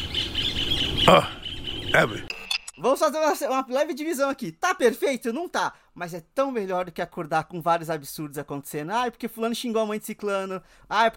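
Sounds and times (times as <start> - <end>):
small bird singing a high-pitched trill: 0.0 - 2.7
speech: 1.1 - 11.1.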